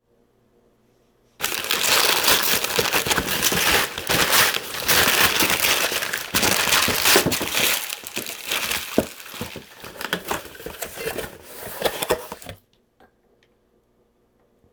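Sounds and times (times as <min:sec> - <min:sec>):
present being unwrapped: 0:01.4 - 0:12.6.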